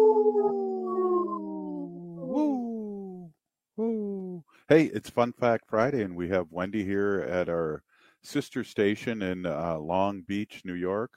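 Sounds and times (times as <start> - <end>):
voice imitating a wolf howl: 0.0 - 4.4
speech: 4.7 - 11.1.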